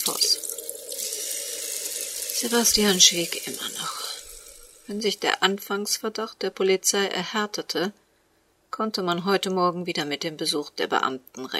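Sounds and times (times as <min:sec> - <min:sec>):
tap water running into a bathroom sink: 0:00.0 - 0:05.2
speech: 0:02.4 - 0:04.1, 0:04.9 - 0:08.0, 0:08.8 - 0:11.5.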